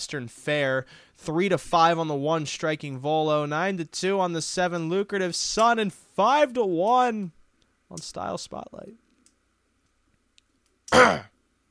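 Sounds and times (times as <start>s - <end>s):
speech: 0.0s - 9.0s, 10.9s - 11.3s
man clearing throat: 10.9s - 11.4s.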